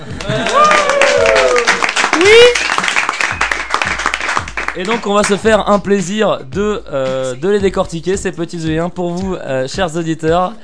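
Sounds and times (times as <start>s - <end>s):
group of guests in a studio applauding: 0.0s - 5.4s
speech: 0.2s - 0.8s, 4.8s - 10.6s
cheerful whoops: 0.2s - 2.7s.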